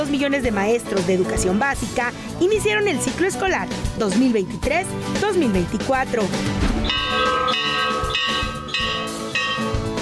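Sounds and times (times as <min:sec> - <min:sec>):
speech: 0:00.0 - 0:08.5
school bell in Mexico ringing for the start of classes: 0:06.9 - 0:10.0.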